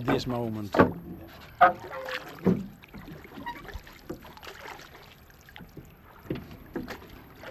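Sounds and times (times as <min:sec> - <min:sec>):
soft wooden knocks of a small fishing boat: 0:00.0 - 0:04.3, 0:05.6 - 0:07.4
water sloshing against the hull of a small fishing boat: 0:00.0 - 0:07.4.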